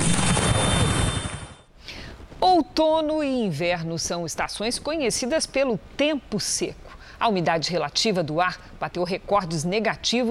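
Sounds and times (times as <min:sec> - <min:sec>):
helicopter passing overhead: 0:00.0 - 0:01.7
speech: 0:02.8 - 0:10.3.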